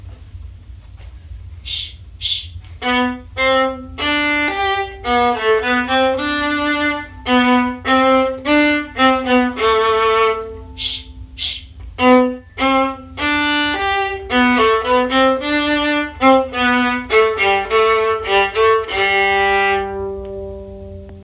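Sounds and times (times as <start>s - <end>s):
viola playing a gavotte theme: 2.8s - 21.2s.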